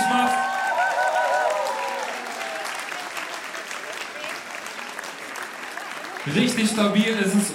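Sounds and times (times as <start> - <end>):
high whoops and cheers: 0.0 - 3.1
large crowd applauding: 0.0 - 7.5
speech: 6.3 - 7.5.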